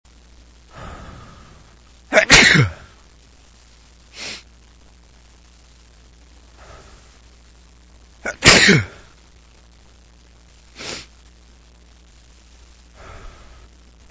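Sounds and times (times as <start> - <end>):
man sneezing: 2.1 - 2.9, 8.2 - 9.0.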